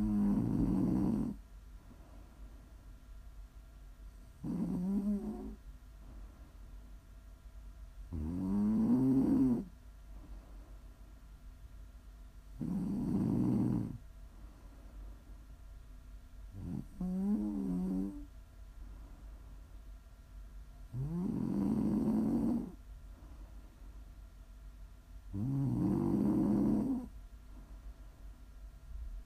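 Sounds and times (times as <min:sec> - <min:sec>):
person snoring: 0:00.0 - 0:01.4, 0:04.4 - 0:05.6, 0:08.1 - 0:09.7, 0:12.6 - 0:14.0, 0:16.6 - 0:18.3, 0:21.0 - 0:22.8, 0:25.3 - 0:27.1
faint steady hum: 0:00.0 - 0:29.2.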